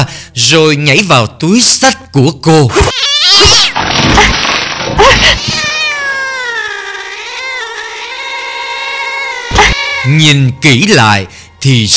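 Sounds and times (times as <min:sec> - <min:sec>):
speech: 0:00.4 - 0:04.4, 0:10.0 - 0:11.9
cat with bristling fur yowling and meowing: 0:02.9 - 0:03.8, 0:05.2 - 0:10.2.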